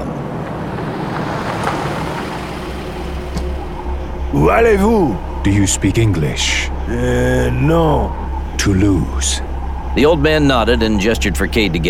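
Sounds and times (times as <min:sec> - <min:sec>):
pickup truck engine rumbling along a road: 0:00.0 - 0:11.8
steady road noise: 0:00.0 - 0:11.8
speech: 0:04.3 - 0:11.8.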